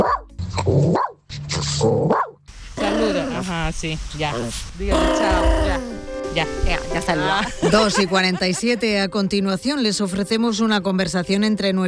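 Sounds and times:
dog barking and growling: 0.0s - 3.4s
speech: 3.7s - 11.8s
laughter: 7.2s - 9.1s.

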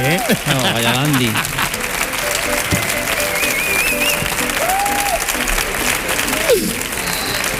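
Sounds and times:
laughter: 0.0s - 2.4s
audience applause: 0.0s - 7.5s
speech: 0.2s - 1.6s
faint whistles: 3.2s - 4.3s, 7.1s - 7.5s.

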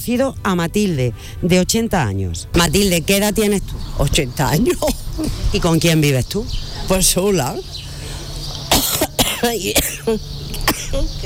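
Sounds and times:
speech: 0.0s - 7.8s, 9.4s - 11.2s
unwell 80-year-old woman coughing in Fuerte del Rey: 8.7s - 11.1s.

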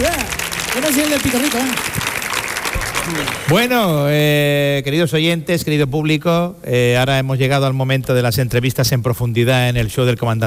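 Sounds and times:
audience applause: 0.0s - 3.8s
speech: 0.8s - 2.1s, 3.1s - 10.4s.

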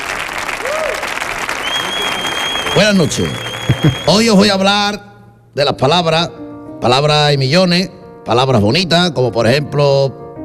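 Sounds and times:
live audience applause: 0.0s - 4.5s
faint whistle-like tone: 1.6s - 4.4s
speech: 2.8s - 10.2s.

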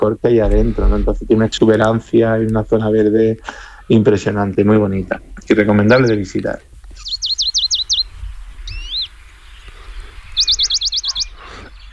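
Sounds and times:
speech: 0.0s - 6.7s
faint low noise: 0.0s - 11.9s
Western Bonelli's warbler singing: 5.4s - 6.3s, 6.9s - 11.9s
Western Bonelli's warbler call: 7.0s - 11.9s.

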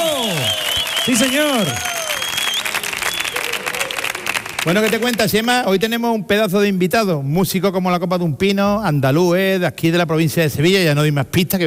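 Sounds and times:
audience whistles: 0.0s - 4.0s
studio audience at a live show cheering and applauding: 0.0s - 5.5s
speech: 1.0s - 1.9s, 4.6s - 11.6s.

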